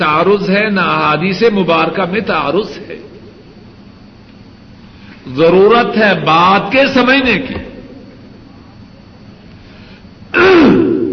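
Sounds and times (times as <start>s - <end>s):
speech: 0.0s - 3.1s, 5.3s - 7.7s
person clearing throat: 10.3s - 11.1s.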